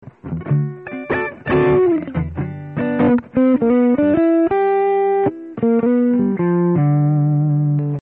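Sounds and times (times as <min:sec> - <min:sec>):
distorted electric guitar with both pickups: 0:00.0 - 0:07.9.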